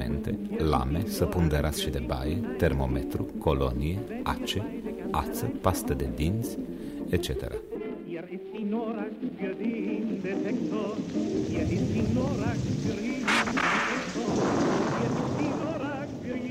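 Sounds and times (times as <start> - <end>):
speech: 0.2 - 7.7, 8.7 - 15.1
steady rain: 10.0 - 16.5
deep rolling evening thunderstorm rumble: 11.5 - 16.5
sharp crack of thunder: 12.2 - 16.5.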